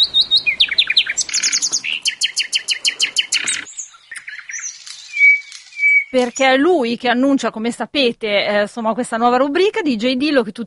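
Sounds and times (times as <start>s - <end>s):
nightingale singing: 0.0s - 7.0s
speech: 6.1s - 10.6s.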